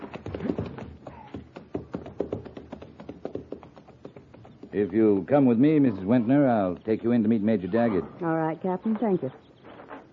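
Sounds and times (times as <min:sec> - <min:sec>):
horse hooves clip-clopping on hard ground: 0:00.0 - 0:07.6
speech: 0:04.8 - 0:09.4.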